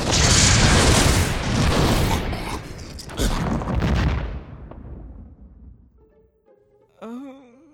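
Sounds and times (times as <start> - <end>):
rumbling booming explosion effect for a magic missile spell: 0.0 - 5.9
person speaking: 6.9 - 7.7.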